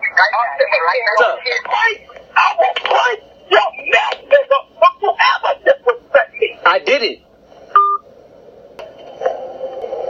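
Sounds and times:
speech: 0.2s - 5.8s, 6.7s - 7.3s
short electronic phone tone beep: 7.8s - 8.0s
low steady phone line hum: 7.8s - 8.1s.

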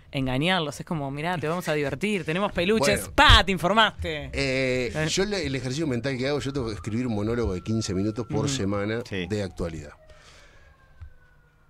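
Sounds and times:
speech: 0.1s - 10.0s
low rumble of ambient noise: 2.9s - 9.8s
ambulance siren wailing: 4.9s - 11.6s.

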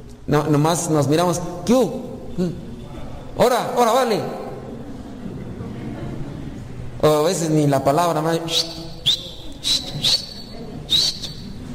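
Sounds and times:
speech: 0.3s - 2.7s, 3.4s - 4.4s, 7.0s - 8.8s, 9.6s - 10.2s
person whistling short sharp high chirps as a greeting: 8.5s - 11.6s.

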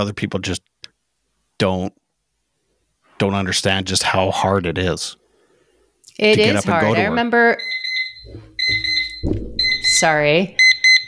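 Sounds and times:
speech: 0.0s - 0.7s, 1.6s - 2.0s, 3.2s - 5.2s, 6.1s - 10.6s
low noise: 0.0s - 11.0s
Time Timer alarm beeping in shrill bursts: 7.6s - 11.0s
brief bump: 8.2s - 10.1s.

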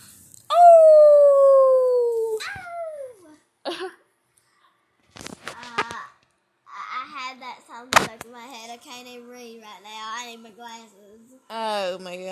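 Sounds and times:
person howling like a dog: 0.5s - 3.1s.

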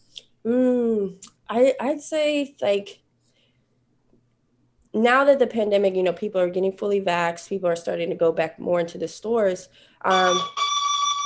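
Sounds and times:
speech: 0.4s - 3.0s, 5.0s - 10.6s
doorbell ringing with a bright electronic tone: 10.1s - 11.2s.

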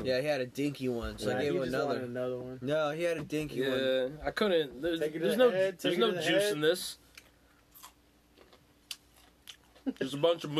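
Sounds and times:
speech: 0.0s - 7.0s, 9.8s - 10.5s
person crunching on a pickle soaked in moonshine: 7.7s - 9.9s.

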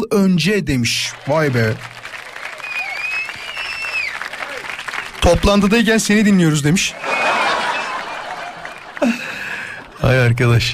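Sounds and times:
speech: 0.1s - 2.0s, 5.2s - 7.1s, 10.0s - 10.7s
applause sound effect: 0.9s - 10.1s
laughter sound effect: 6.9s - 10.0s.

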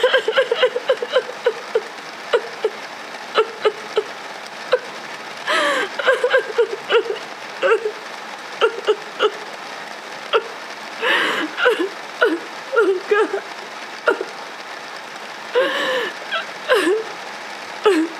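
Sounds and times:
laughter: 0.0s - 1.7s
whimpering squeaky cries: 0.0s - 2.8s, 3.4s - 4.1s, 5.5s - 8.0s, 8.6s - 9.4s, 11.1s - 13.4s, 15.6s - 17.1s
heavy rain: 0.0s - 18.1s.

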